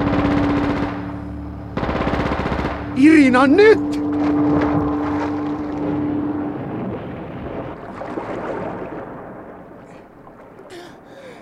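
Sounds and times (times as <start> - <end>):
machine gun fire aimed at the engine of an approaching vessel: 0.0 - 1.1, 1.8 - 3.0
droning engine hum of an approaching vessel: 0.0 - 11.3
speech: 3.0 - 4.0.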